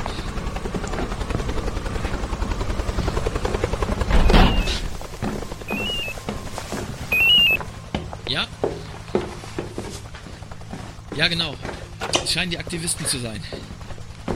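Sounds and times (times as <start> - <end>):
approaching helicopters rotor thumping: 0.0 - 14.3
brief high electronic beeps: 4.2 - 4.8, 5.7 - 6.2, 7.1 - 7.6
speech: 11.2 - 13.7.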